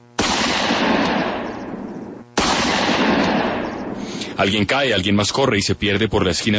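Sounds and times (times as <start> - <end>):
gunshots: 0.1 - 4.2
speech: 4.4 - 6.5.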